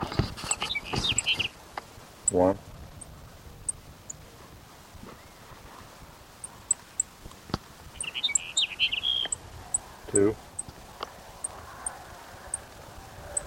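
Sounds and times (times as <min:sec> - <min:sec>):
low hiss: 0:00.0 - 0:13.4
Sage Sparrow singing in the morning: 0:00.4 - 0:01.6, 0:02.2 - 0:04.2, 0:06.4 - 0:07.2, 0:07.9 - 0:10.8, 0:13.3 - 0:13.4
speech: 0:02.3 - 0:02.7.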